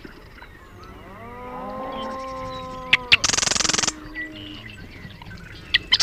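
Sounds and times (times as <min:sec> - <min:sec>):
steady low honking tones: 0:00.6 - 0:05.7
marsh wren giving a fast rattling trill: 0:02.2 - 0:04.0.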